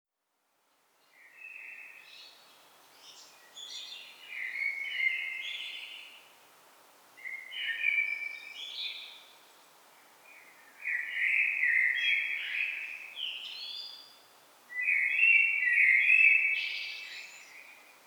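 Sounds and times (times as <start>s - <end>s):
common blackbird Turdus merula singing fluted warbling phrases: 1.0s - 6.3s, 7.2s - 18.0s.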